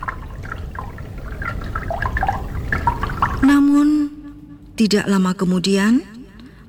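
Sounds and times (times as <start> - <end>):
river water flowing and splashing: 0.0 - 3.4
speech: 4.8 - 6.1.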